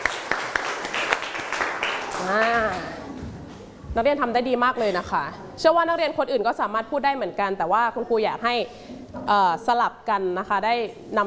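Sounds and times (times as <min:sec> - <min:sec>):
classroom students clapping hands: 0:00.0 - 0:03.0
speech: 0:02.2 - 0:02.9, 0:04.0 - 0:11.2.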